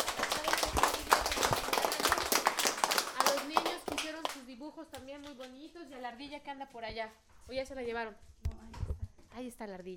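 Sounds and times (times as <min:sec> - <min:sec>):
audience applauding at a school event: 0:00.0 - 0:04.4
speech: 0:06.4 - 0:08.8, 0:09.4 - 0:09.9.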